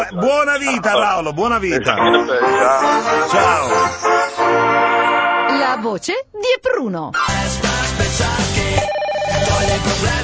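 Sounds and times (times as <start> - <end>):
speech: 0.0 - 4.7, 5.6 - 10.2
telephone ringing electronically: 8.8 - 10.2.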